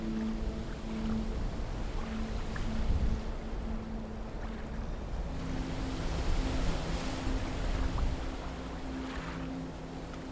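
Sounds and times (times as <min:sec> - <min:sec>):
wind noise: 0:00.0 - 0:09.1
gentle waves lapping on a sandy beach: 0:00.0 - 0:10.3.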